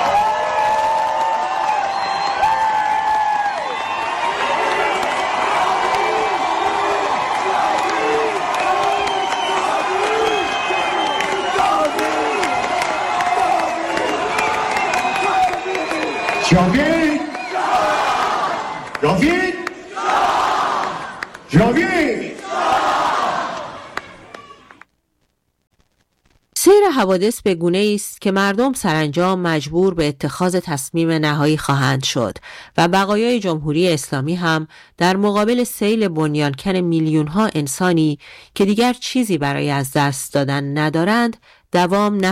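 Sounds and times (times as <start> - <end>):
concert crowd cheering: 0.0 - 24.9
large concert crowd chanting a slogan in unison: 4.8 - 24.7
speech: 27.0 - 42.3.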